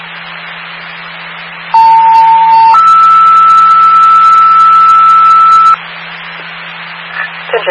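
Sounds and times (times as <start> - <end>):
low hum: 0.0 - 7.6
emergency dispatch paging tones over a radio channel: 1.7 - 5.8.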